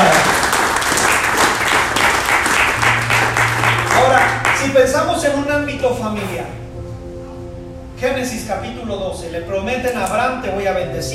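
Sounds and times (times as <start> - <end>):
congregation applauding: 0.0 - 5.2
low hum of organ or keyboard: 0.0 - 11.1
speech: 5.1 - 6.7, 8.0 - 11.1.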